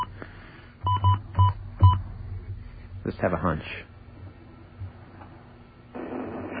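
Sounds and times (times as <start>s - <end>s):
faint low hum: 0.0s - 6.5s
telephone touch-tone beeps: 0.9s - 2.0s
speech: 3.1s - 3.9s.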